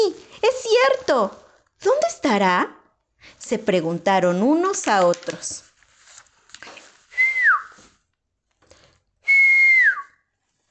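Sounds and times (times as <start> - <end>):
speech: 0.8 - 2.8, 3.4 - 5.6
person whistling: 7.1 - 7.8, 9.2 - 10.2.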